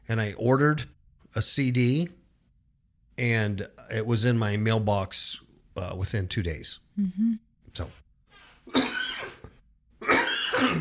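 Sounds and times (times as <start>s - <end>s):
speech: 0.1s - 2.2s, 3.2s - 8.0s, 8.7s - 8.9s
person coughing: 8.7s - 10.7s.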